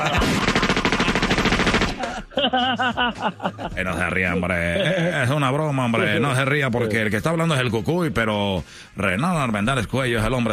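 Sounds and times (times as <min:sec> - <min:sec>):
rapid pistol gunfire sound effect: 0:00.0 - 0:02.3
laughter: 0:00.0 - 0:06.4
speech: 0:02.4 - 0:10.5.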